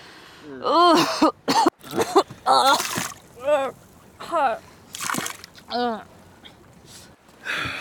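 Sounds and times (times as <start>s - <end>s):
seasick young woman retching over the side of a sailboat: 0.7s - 3.7s
wet splattering of vomit: 1.8s - 4.1s, 4.9s - 5.8s.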